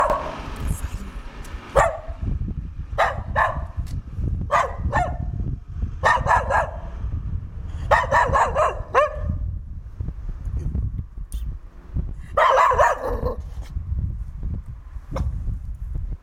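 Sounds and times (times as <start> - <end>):
dog barking in a village: 0.0 - 0.4, 1.7 - 2.2, 3.0 - 3.8, 4.5 - 5.3, 6.0 - 6.9, 7.8 - 9.4, 12.3 - 13.4
steady low rumble of background noise: 0.0 - 16.2.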